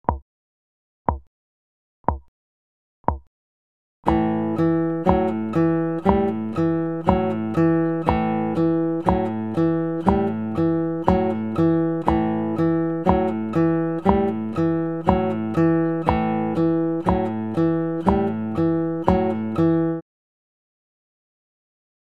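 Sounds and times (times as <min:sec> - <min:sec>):
picking: 0:04.1 - 0:20.0.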